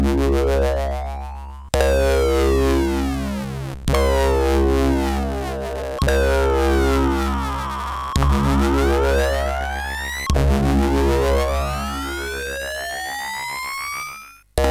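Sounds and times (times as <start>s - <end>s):
CSG8580R5 SID synth samples: 0.1s - 14.5s.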